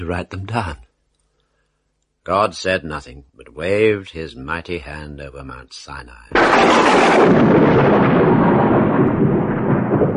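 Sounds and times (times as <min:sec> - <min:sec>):
speech: 0:00.0 - 0:00.9, 0:02.3 - 0:08.4
loud crash of thunder with lightning over Mount Sinai: 0:06.4 - 0:10.1.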